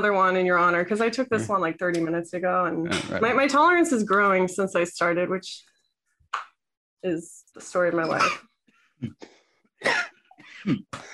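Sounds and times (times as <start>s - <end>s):
speech: 0.0s - 5.7s, 7.0s - 10.0s, 10.6s - 11.1s
throat clearing: 2.9s - 3.2s, 9.0s - 11.1s
person coughing harshly: 8.0s - 8.4s, 9.8s - 11.1s.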